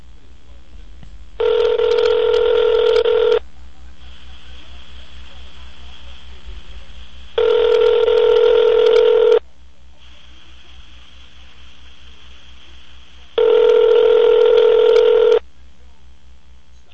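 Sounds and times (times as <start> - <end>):
phone line ringback tones while a call is placed: 1.4 - 3.4, 7.4 - 9.4, 13.4 - 15.4.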